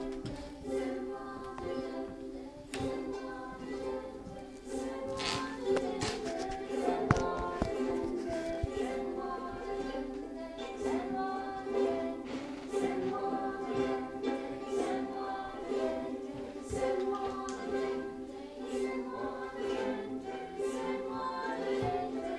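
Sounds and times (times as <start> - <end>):
ukulele: 0.0 - 22.3.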